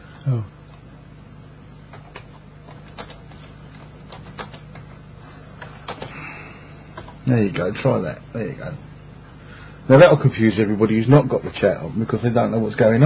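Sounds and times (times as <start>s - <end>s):
steady low hum: 0.0s - 13.0s
speech: 0.2s - 0.6s, 7.3s - 8.9s, 9.9s - 13.0s
typing on a computer keyboard: 1.9s - 4.9s, 5.6s - 6.2s.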